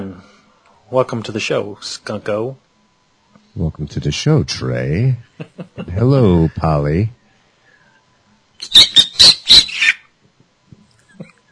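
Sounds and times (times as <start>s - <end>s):
speech: 0.9s - 2.6s, 3.6s - 7.2s
laughter: 5.2s - 6.6s
pet bird squawking harshly: 8.6s - 10.1s.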